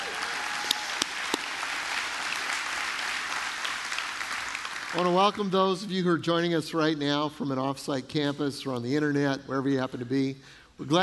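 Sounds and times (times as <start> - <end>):
crowd applauding: 0.0 - 5.5
speech: 4.9 - 11.0.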